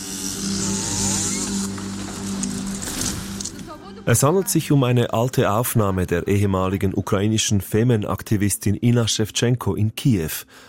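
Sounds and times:
chainsaw cutting down a wooden cross: 0:00.0 - 0:03.6
speech: 0:04.0 - 0:10.6.

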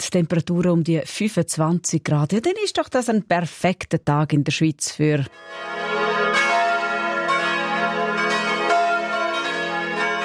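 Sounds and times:
speech: 0:00.0 - 0:05.8
church bells ringing in a continuous peal: 0:05.3 - 0:10.2.

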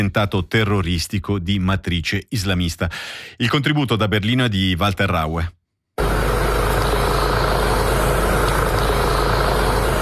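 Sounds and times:
speech: 0:00.0 - 0:05.6
helicopters flying overhead with rotor roar: 0:06.0 - 0:09.9.

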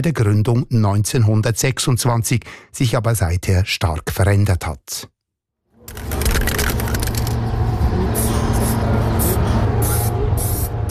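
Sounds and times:
speech: 0:00.0 - 0:05.2
low outdoor rumble: 0:05.8 - 0:10.8
aerosol spray paint hissing onto a gymnasium wall: 0:08.2 - 0:10.8.

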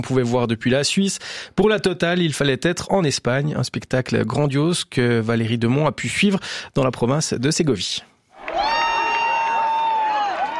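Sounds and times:
speech: 0:00.0 - 0:08.1
crowd cheering at a total solar eclipse on an agricultural field in Segovia, Spain: 0:08.4 - 0:10.5
one long sustained high shout: 0:08.4 - 0:10.5.

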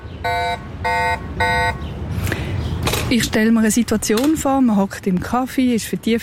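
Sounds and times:
loud harmonic electronic beeps from an e-bike anti-theft alarm: 0:00.2 - 0:01.8
speech: 0:03.1 - 0:06.2.

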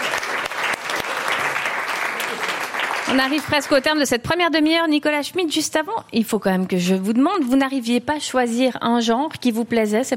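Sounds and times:
audience applauding a guest on a talk programme: 0:00.0 - 0:04.0
speech: 0:03.1 - 0:10.1.

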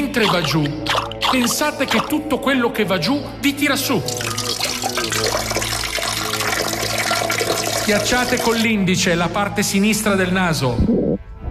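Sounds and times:
water poured for a glass of drinking water: 0:00.0 - 0:02.3, 0:03.9 - 0:08.7
speech: 0:00.2 - 0:04.3, 0:07.9 - 0:11.2.

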